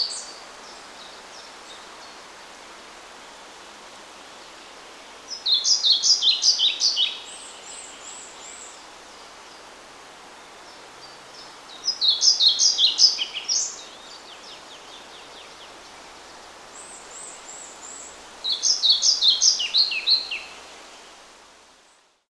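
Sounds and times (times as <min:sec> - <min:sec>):
pied flycatcher: 0:05.3 - 0:08.8, 0:11.0 - 0:15.7, 0:16.7 - 0:20.5.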